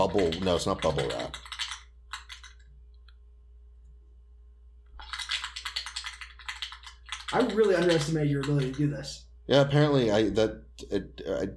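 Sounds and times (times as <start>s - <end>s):
can of spray paint being shaken: 0.0s - 2.6s, 5.0s - 9.0s
low steady hum: 0.0s - 11.5s
speech: 0.1s - 1.4s, 7.3s - 11.5s.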